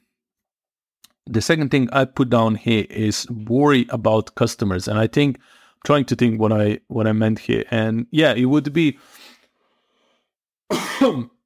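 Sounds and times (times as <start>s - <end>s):
speech: 1.3s - 9.3s, 10.7s - 11.4s
harsh cough with a throat-clearing rasp: 10.7s - 11.4s.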